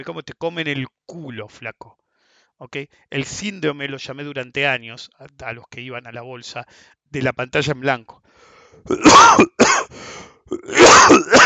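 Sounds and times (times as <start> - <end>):
speech: 0.0 - 2.0, 2.6 - 11.4
person coughing and clearing throat: 8.9 - 11.4.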